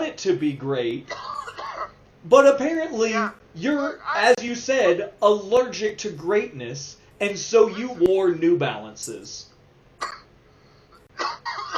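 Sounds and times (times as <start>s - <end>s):
speech: 0.2s - 1.3s, 2.2s - 10.2s
person coughing: 1.1s - 2.0s, 10.0s - 10.3s, 11.2s - 11.7s.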